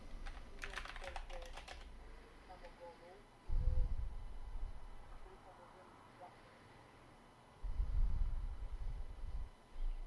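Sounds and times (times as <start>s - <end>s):
typing on a computer keyboard: 0.2s - 1.9s
dull low thumps: 3.5s - 5.1s, 7.6s - 10.0s.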